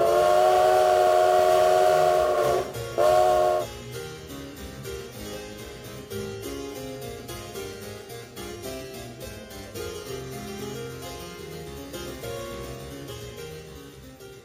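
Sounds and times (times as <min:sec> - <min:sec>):
steam train whistle blasts: 0:00.0 - 0:03.7.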